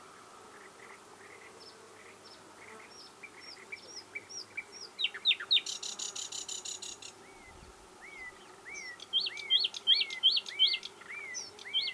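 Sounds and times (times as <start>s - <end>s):
common nightingale Luscinia megarhynchos singing: 6.8s - 11.9s.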